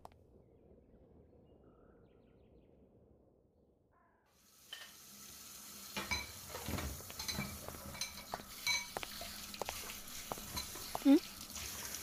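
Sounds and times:
bowls and chopsticks clinking and scraping while being washed after a meal: 6.0 - 11.3
voice murmuring: 11.0 - 11.2.

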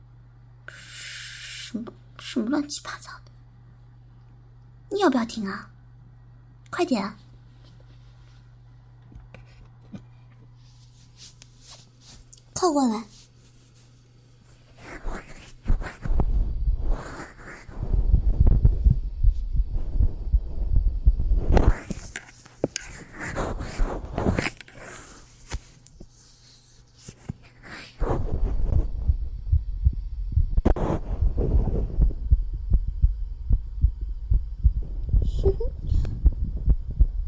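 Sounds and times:
speech: 1.7 - 3.3, 4.9 - 5.8, 6.7 - 7.2, 12.6 - 13.2
fast heartbeat heard with an ear pressed against a person's chest: 15.1 - 22.0, 28.0 - 37.2.

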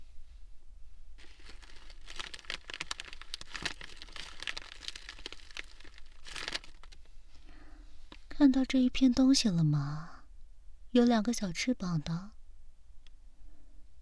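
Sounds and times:
sanitary pad plastic packaging bag being ripped open: 1.2 - 7.1
speech: 8.4 - 10.1, 10.9 - 12.4.

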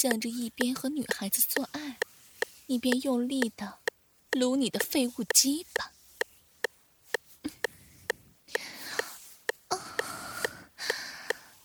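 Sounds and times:
speech: 0.0 - 2.1, 2.7 - 3.8, 4.4 - 6.0
sharp regular clicks ticking: 0.0 - 11.5
woman breathing heavily and panting: 8.6 - 11.5.

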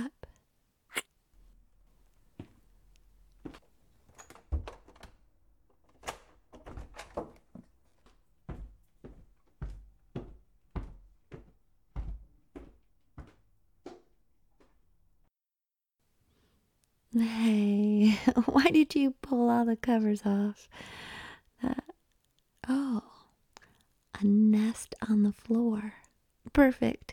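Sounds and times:
front door thudding shut: 3.5 - 8.8
speech: 17.2 - 21.0, 24.7 - 27.1.

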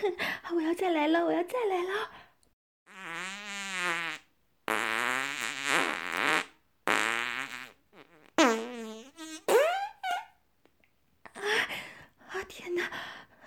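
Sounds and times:
speech: 0.0 - 2.2
long buzzing farts: 2.9 - 9.9.

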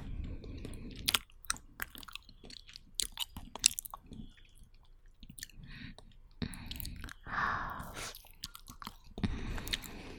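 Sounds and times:
person chewing barbecue: 0.0 - 10.1.

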